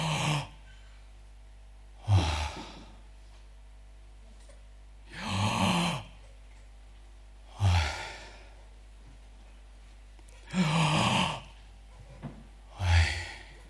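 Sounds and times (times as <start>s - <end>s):
person breathing deeply in and out as asked by a doctor: 0.0s - 1.1s, 2.0s - 3.1s, 5.1s - 6.1s, 7.5s - 8.7s, 10.4s - 11.6s, 12.7s - 13.6s.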